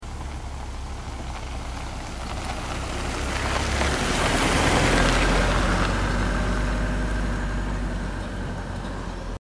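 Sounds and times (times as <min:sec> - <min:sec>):
road noise: 0:00.0 - 0:09.4
truck: 0:00.0 - 0:09.4.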